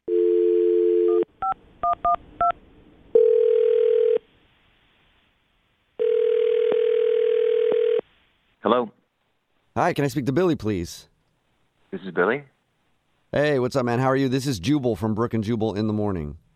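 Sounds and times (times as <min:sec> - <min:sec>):
telephone dial tone: 0:00.1 - 0:02.0, 0:03.2 - 0:04.2, 0:06.0 - 0:08.0
speech: 0:09.8 - 0:11.1, 0:11.9 - 0:12.5, 0:13.3 - 0:16.4.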